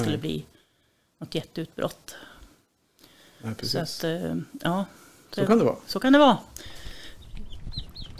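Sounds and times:
speech: 0.0 - 0.5, 1.2 - 2.3, 3.4 - 6.8
several chicks peeping: 6.6 - 8.1.

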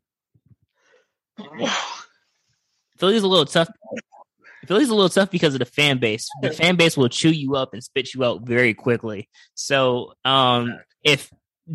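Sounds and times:
speech: 1.4 - 2.0, 3.0 - 4.0, 4.7 - 11.7
loud explosive sneeze: 1.4 - 2.2.

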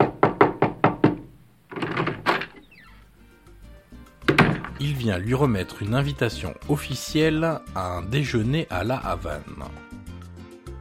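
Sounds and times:
police officer knocking on a wooden hotel room door: 0.0 - 2.2, 4.3 - 4.8
speech: 4.8 - 9.9.

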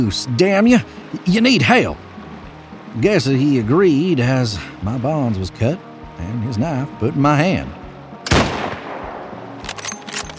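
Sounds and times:
speech: 0.0 - 2.1, 2.9 - 7.8
gunshot echo and debris rattles: 8.2 - 10.3
loud gunshot: 8.3 - 9.4.

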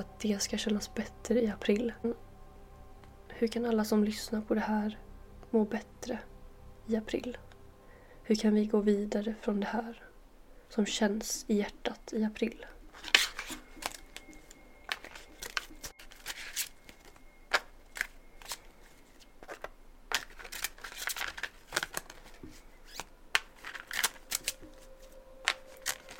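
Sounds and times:
speech: 0.0 - 2.3, 3.3 - 6.3, 6.9 - 7.4, 8.3 - 10.0, 10.7 - 13.1
tarot cards being shuffled and drawn: 12.9 - 26.1.

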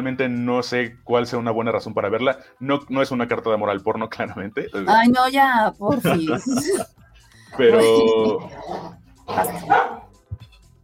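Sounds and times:
speech: 0.0 - 10.0
laughter: 5.8 - 8.5
dogs barking and snarling in a scuffle: 8.4 - 10.2
dog yipping: 9.3 - 10.1.

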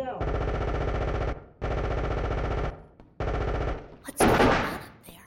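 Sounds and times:
loud rapid automatic gunfire in sustained bursts: 0.0 - 4.6.

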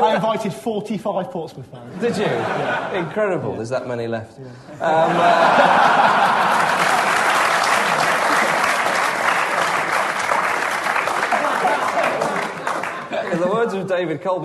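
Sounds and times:
speech: 0.2 - 6.1, 13.8 - 14.4
laughter: 1.8 - 3.6, 4.7 - 10.1, 11.0 - 14.1
audience applause: 5.2 - 13.6.

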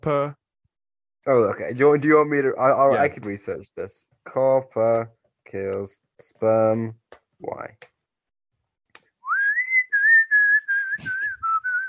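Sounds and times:
speech: 0.0 - 0.4, 1.2 - 7.9
person whistling a short tune: 9.2 - 11.8.

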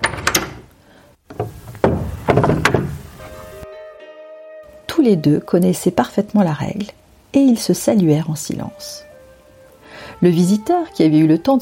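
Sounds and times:
monastery door latch clattering: 0.0 - 0.7, 1.3 - 3.2
heavy wooden monastery door opening with creaks, knocks and thuds: 0.0 - 3.3
speech: 5.0 - 9.1, 10.2 - 11.6.

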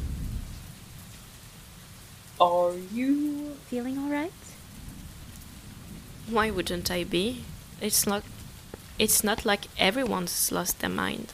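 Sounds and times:
deep low rumble of thunder: 0.0 - 11.3
steady heavy rain in a thunderstorm: 0.0 - 11.3
speech: 2.4 - 4.5, 6.3 - 8.4, 9.0 - 11.3.

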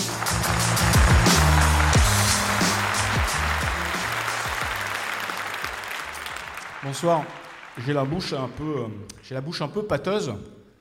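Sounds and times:
comedy show audience clapping: 0.0 - 8.6
speech: 6.9 - 10.6.

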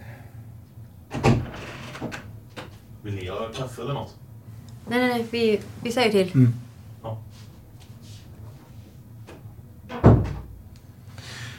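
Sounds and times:
door opening with a dull thump and short rattle: 1.1 - 2.8, 9.3 - 10.6
speech: 3.0 - 4.2, 4.9 - 7.5
soft rustling: 4.6 - 9.1.

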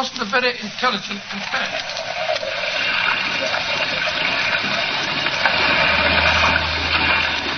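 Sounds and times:
speech: 0.0 - 2.5, 3.4 - 4.8
churning water around a small fishing boat on rough sea: 0.0 - 7.5
low motor-like drone: 5.3 - 7.5.

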